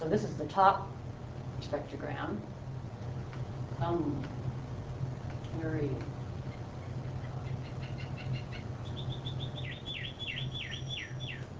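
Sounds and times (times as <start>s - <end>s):
steady low rumble of noise: 0.0s - 11.5s
speech: 0.1s - 1.0s, 1.6s - 2.6s, 3.8s - 4.4s, 5.5s - 6.1s
male bird singing high-pitched tonal learned song: 6.5s - 11.5s.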